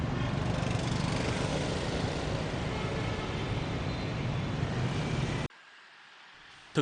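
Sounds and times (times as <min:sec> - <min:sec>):
heavy traffic at a busy intersection: 0:00.0 - 0:05.5.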